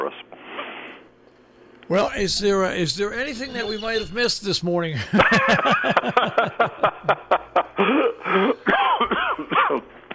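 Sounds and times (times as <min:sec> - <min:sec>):
speech: 0:01.9 - 0:06.9
laughter: 0:04.9 - 0:08.6
person clearing throat: 0:07.8 - 0:10.1
person coughing in loud rasping bursts: 0:07.8 - 0:10.1.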